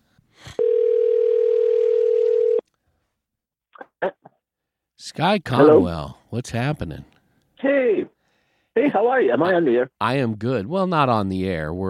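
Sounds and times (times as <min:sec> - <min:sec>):
ringback tone of an outgoing phone call: 0:00.6 - 0:02.6
speech: 0:05.1 - 0:07.7, 0:09.0 - 0:11.8.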